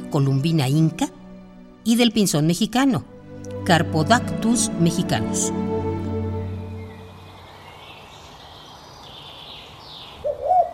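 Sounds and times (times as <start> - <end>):
speech: 0.1 - 1.1, 1.8 - 3.1, 3.7 - 5.7
faint bird calls: 6.8 - 10.7
pigeon cooing: 10.2 - 10.7.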